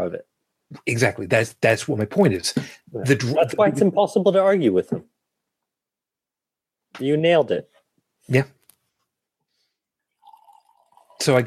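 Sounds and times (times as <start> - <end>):
speech: 0.0 - 5.1, 7.0 - 8.6, 11.2 - 11.4
coffee pouring into a cup: 10.1 - 11.4.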